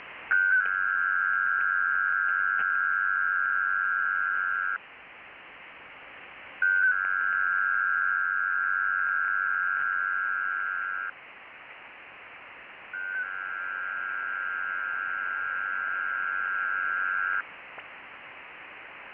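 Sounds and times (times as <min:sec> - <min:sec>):
WINMOR 500Hz 4PSK 93-75Bd digital radio data signal: 0:00.3 - 0:04.8, 0:06.6 - 0:11.1, 0:13.0 - 0:17.4.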